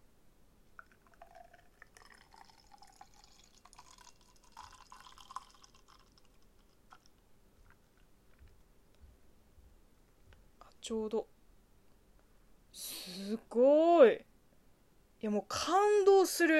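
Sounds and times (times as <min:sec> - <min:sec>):
beer being poured into a glass: 0:00.8 - 0:07.2
speech: 0:10.9 - 0:11.3, 0:13.2 - 0:14.3, 0:15.2 - 0:16.5.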